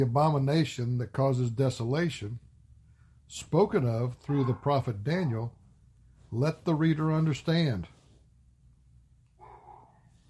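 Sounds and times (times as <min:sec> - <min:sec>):
speech: 0:00.0 - 0:02.4, 0:03.3 - 0:05.6, 0:06.3 - 0:08.0
dog barking: 0:04.3 - 0:05.5, 0:09.4 - 0:10.1.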